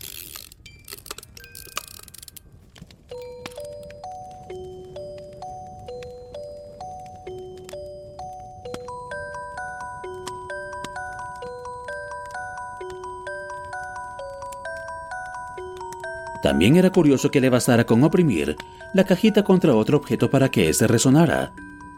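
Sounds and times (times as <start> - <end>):
hand-cranked music box crank clicking and ratcheting: 0.0 - 21.9
speech: 16.4 - 21.6.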